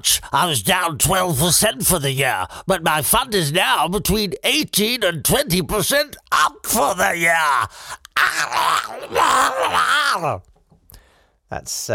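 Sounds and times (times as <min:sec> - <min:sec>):
speech: 0:00.0 - 0:10.5, 0:11.5 - 0:11.9
man's drawn-out groaning moan: 0:06.4 - 0:10.4.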